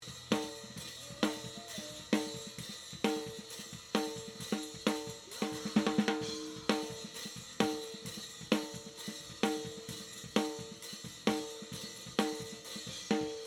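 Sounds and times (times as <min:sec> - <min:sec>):
snare drum at a concert through its top microphone: 0:00.0 - 0:13.4.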